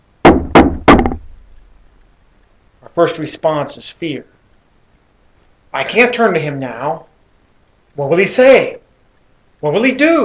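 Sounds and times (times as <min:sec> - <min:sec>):
firm knocks on a door: 0:00.2 - 0:01.3
speech: 0:03.0 - 0:04.4, 0:05.8 - 0:07.1, 0:08.0 - 0:08.8, 0:09.6 - 0:10.2.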